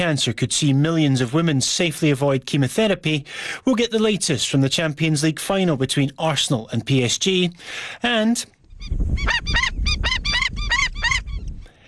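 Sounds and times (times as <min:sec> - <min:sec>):
speech: 0:00.0 - 0:10.2
Indian skimmer harsh nasal yapping calls: 0:08.6 - 0:11.7.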